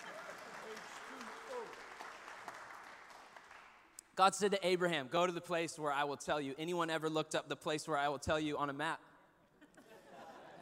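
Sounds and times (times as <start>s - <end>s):
laughter: 0.0s - 0.8s, 9.6s - 10.6s
audience clapping: 0.0s - 4.0s
speech: 4.2s - 9.1s.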